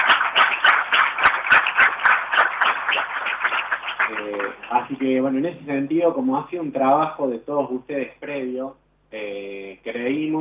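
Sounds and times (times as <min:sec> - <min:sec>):
audience applauding: 0:00.0 - 0:05.2
speech: 0:04.7 - 0:10.3.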